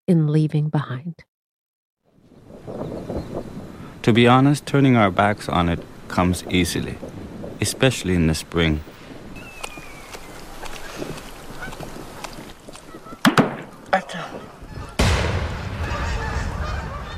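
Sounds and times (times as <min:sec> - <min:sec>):
speech: 0:00.1 - 0:01.3, 0:04.0 - 0:08.9
steady rush of wind or water noise: 0:02.2 - 0:15.0
wild geese honking in the skies of Pervernatuk: 0:09.2 - 0:15.0, 0:15.8 - 0:17.1.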